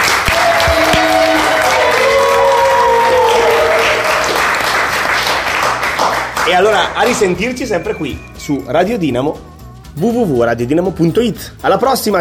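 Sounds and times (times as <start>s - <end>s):
cheers and whoops: 0.0s - 4.9s
group applauding: 0.0s - 8.5s
speech: 6.5s - 12.2s.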